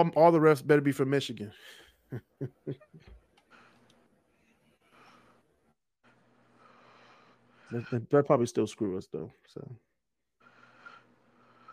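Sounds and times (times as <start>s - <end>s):
speech: 0.0s - 3.0s, 7.7s - 9.8s
heavy breathing into microphone: 3.4s - 8.1s, 10.4s - 11.7s.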